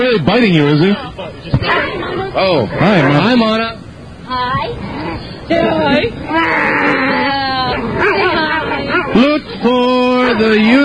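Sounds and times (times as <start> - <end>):
people's voices: 0.0 - 10.8
speech: 0.1 - 8.4, 9.1 - 10.8
animal grunting and growling while being scratched near its crotch: 6.3 - 8.9.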